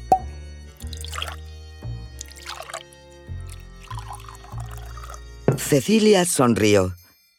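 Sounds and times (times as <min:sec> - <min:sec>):
homemade sherry pouring into a glass: 0:00.8 - 0:01.4, 0:02.1 - 0:05.3
speech: 0:05.7 - 0:07.0.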